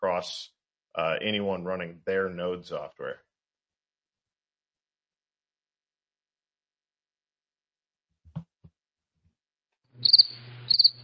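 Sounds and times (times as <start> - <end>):
speech: 0.2 - 3.3, 10.2 - 11.0
crickets chirping in shrill rapid trills: 10.0 - 11.0.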